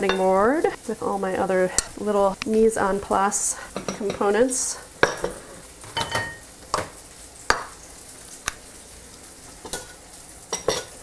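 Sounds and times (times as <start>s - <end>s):
speech: 0.0s - 5.3s
tofu sizzling as it fries in a pan: 0.0s - 11.0s.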